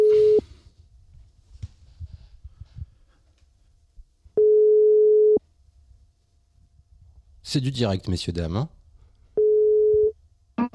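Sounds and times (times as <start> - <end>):
telephone ringing tone while placing a call: 0.0 - 0.4, 4.4 - 5.4, 9.4 - 10.1
speech: 7.5 - 8.8.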